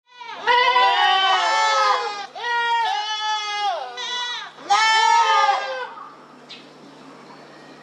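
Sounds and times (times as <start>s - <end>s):
goat bleating: 0.1s - 6.0s.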